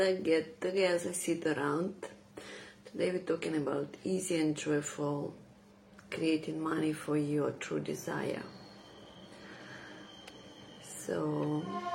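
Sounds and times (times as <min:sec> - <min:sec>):
speech: 0:00.0 - 0:05.4, 0:06.1 - 0:08.6, 0:11.1 - 0:11.9
thin metallic whine of a passing train: 0:07.7 - 0:11.9
train rumbling past next to a hotel: 0:08.0 - 0:11.9.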